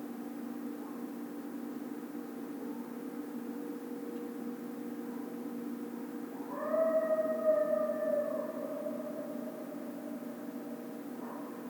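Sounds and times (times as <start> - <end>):
faint steady low hum: 0.0 - 11.6
coyote howling: 6.4 - 11.6.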